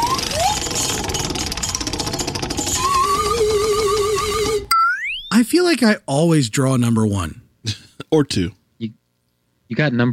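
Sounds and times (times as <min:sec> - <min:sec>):
prize wheel spinning with pointer ticking past pegs: 0:00.0 - 0:05.1
wavering tone: 0:00.0 - 0:05.3
speech: 0:05.4 - 0:09.0, 0:09.7 - 0:10.1.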